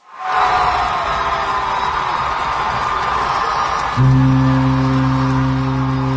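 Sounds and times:
large arena crowd in Laval cheering at end of a won match: 0.0 - 6.1
loud long horn-like end-game siren: 4.0 - 6.1.

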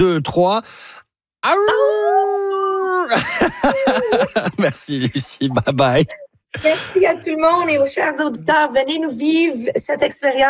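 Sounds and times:
speech: 0.0 - 10.4
two people imitating a wolf howl together: 1.4 - 4.2
laughter-like bursts: 3.1 - 5.7.

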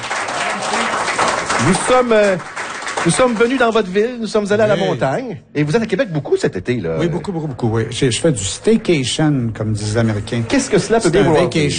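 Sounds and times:
audience applause at a live event in a microbrewery: 0.0 - 4.0
speech: 1.6 - 11.7.

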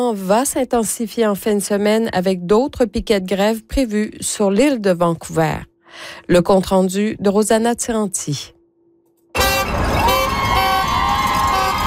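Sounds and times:
speech: 0.0 - 8.6
street ambience: 9.3 - 11.8
supportive car horns honking at a picket: 9.3 - 11.8
noisy outdoor crowd: 9.4 - 11.8.

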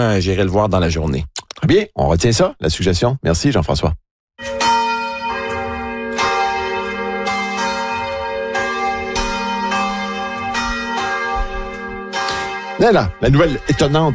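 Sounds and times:
speech: 0.0 - 4.6, 12.8 - 14.1
church bells ringing: 4.4 - 14.1.

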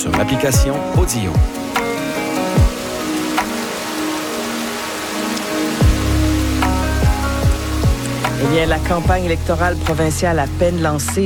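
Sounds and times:
speech: 0.0 - 1.8, 8.4 - 11.2
rain falling: 0.8 - 11.2
deep low swooping thumps: 5.8 - 11.2.

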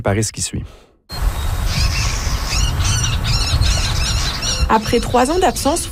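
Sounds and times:
speech: 0.0 - 1.2, 4.7 - 5.9
marsh bird giving harsh squawking calls: 1.6 - 5.9.

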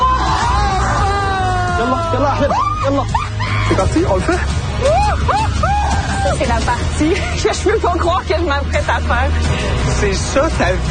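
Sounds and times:
group of people yelling and screaming: 0.0 - 6.7
speech: 2.1 - 10.8.

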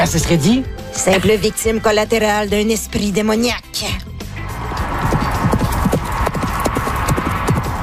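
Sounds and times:
speech: 0.0 - 4.1
continuous outdoor rumble: 4.0 - 7.8
wild horses' hooves clip-clopping on an island: 4.5 - 7.8.

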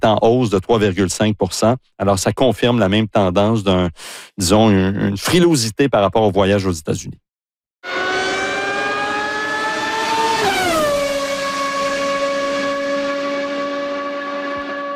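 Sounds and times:
speech: 0.0 - 7.2
Formula 1 race car engine screaming: 7.8 - 14.9.

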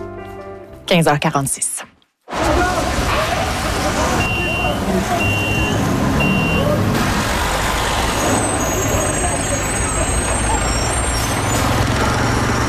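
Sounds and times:
speech: 0.9 - 1.9
city street traffic in the Montreal area: 2.3 - 12.6
trucks rumbling: 2.3 - 12.6
short high beeps: 4.3 - 6.7
truck air brakes hissing: 8.1 - 11.7.

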